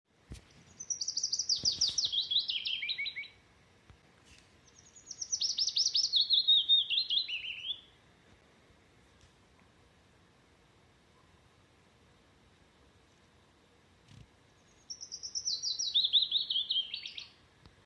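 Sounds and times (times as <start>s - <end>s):
willow warbler singing: 0.4s - 3.4s, 4.6s - 8.0s, 14.1s - 17.8s.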